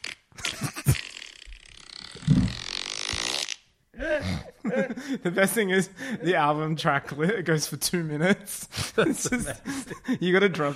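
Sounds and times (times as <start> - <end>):
long wet sputtering fart sound effect: 0.0 - 4.6
laughter: 4.0 - 7.5, 8.3 - 10.7
speech: 4.7 - 10.7.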